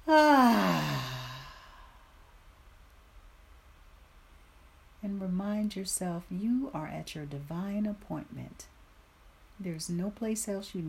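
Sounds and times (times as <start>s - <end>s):
loud voiced exhale during a guided breathing exercise: 0.1s - 2.0s
speech: 5.7s - 8.8s, 9.6s - 10.8s.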